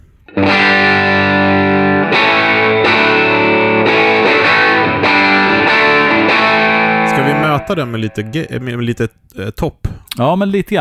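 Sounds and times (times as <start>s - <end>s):
electric guitar sustained chords through germanium overdrive pedal with controls at noon: 0.4s - 7.4s
speech: 7.7s - 10.7s.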